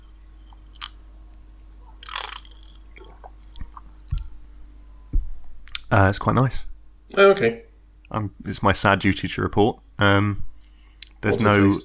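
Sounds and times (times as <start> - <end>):
person taking a large gulp of drink: 1.9 - 4.4
speech: 5.9 - 10.5, 11.2 - 11.8.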